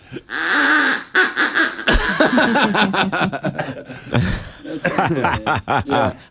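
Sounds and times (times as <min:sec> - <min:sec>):
speech: 0:00.1 - 0:00.6, 0:02.6 - 0:06.2
duck call quacking: 0:00.3 - 0:02.5
laughter: 0:01.8 - 0:06.2.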